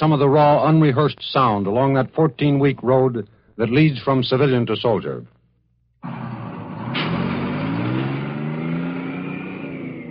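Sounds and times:
speech: 0.0 - 5.3
bus engine driving down a highway in southern New Jersey: 6.0 - 10.0
road roar of a bus on a highway: 6.0 - 10.0.

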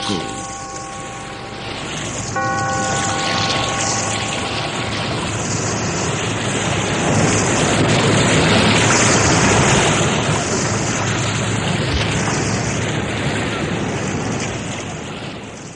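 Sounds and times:
faint held tone: 0.0 - 7.7
sea waves surging and washing through an echoing cave: 0.0 - 15.7
speech: 0.1 - 0.3.

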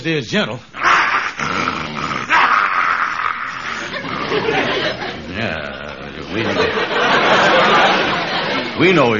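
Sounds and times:
speech: 0.0 - 0.8, 4.3 - 8.1, 8.8 - 9.1
German shepherd growling and snarling: 0.8 - 6.0
laughter: 3.5 - 9.0.

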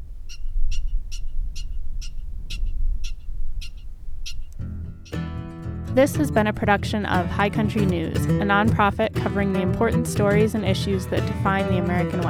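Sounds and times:
American pika giving sharp squeaky calls in the Bodie Hills in summer: 0.3 - 5.2
music: 4.6 - 12.2
speech: 6.0 - 12.2.

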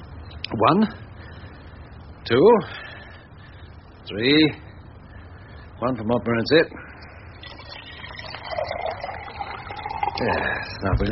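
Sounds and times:
speech: 0.5 - 1.0, 2.3 - 2.8, 4.1 - 4.6, 5.8 - 6.9, 10.2 - 11.0
water used to warm a teapot poured out of it: 7.4 - 10.9.

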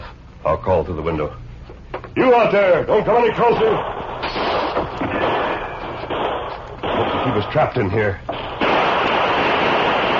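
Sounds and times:
speech: 0.4 - 1.4, 2.2 - 4.5, 7.2 - 8.4
gunshots from all sides of a shack: 3.2 - 10.1.

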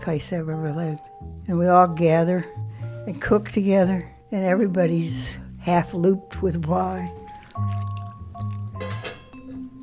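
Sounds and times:
speech: 0.0 - 7.8
liquid poured into a baking dish: 7.1 - 9.6.

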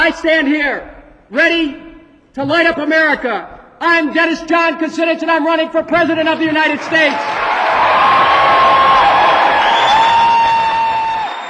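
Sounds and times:
speech: 0.0 - 8.2
supporters cheering at a presidential campaign announcement: 6.6 - 11.4
whoops: 7.6 - 11.4
piercing whistles: 9.5 - 10.5.

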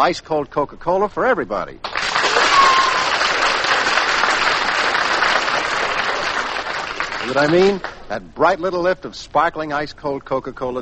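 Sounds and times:
speech: 0.0 - 2.0, 7.2 - 10.7
large audience applause: 1.8 - 8.1.

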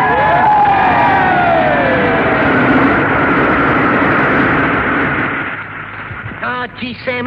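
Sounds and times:
falling whistle-like tone: 0.0 - 3.7
large crowd cheering: 0.0 - 5.2
passing mechanical rumble: 0.0 - 7.2.

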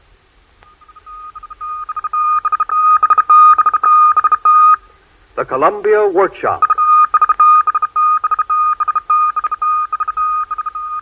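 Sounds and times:
Morse code testing signal beeps: 0.6 - 4.9, 6.5 - 11.0
speech: 5.4 - 6.7.

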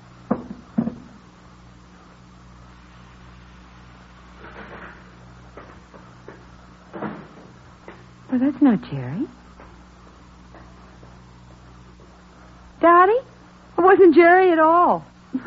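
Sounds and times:
door thump: 0.3 - 1.2, 6.9 - 7.5
speech: 8.4 - 9.4, 13.9 - 15.4.

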